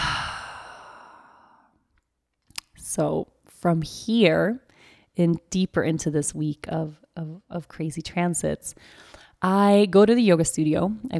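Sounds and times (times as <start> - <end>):
deep breath exhaled through an open mouth: 0.0 - 1.7
speech: 2.9 - 4.6, 5.2 - 11.1.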